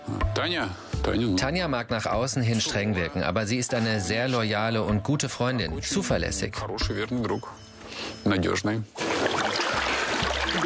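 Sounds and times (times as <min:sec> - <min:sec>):
speech: 0:00.4 - 0:09.6
hot water being poured: 0:08.9 - 0:10.6.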